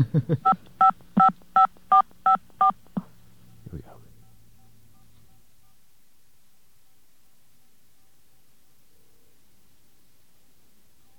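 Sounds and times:
speech: 0.0 - 0.6
touch-tone telephone dialing dual-tone beeps: 1.2 - 2.4.

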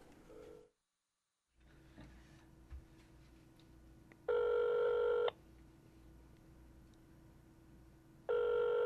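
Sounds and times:
telephone line ringing back with short unusual cadence: 4.3 - 5.3, 8.3 - 8.8.

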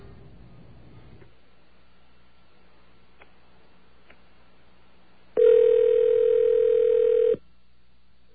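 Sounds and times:
phone dial tone: 5.4 - 7.4.

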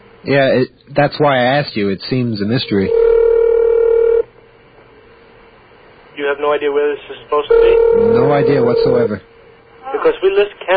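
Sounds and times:
speech: 0.2 - 3.0, 6.5 - 9.3, 10.0 - 10.7
telephone tone for a call: 2.8 - 4.2, 7.5 - 9.1.

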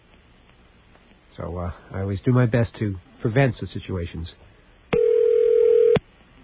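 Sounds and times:
speech: 1.4 - 4.5
telephone ringing tone over the line: 5.0 - 6.0.

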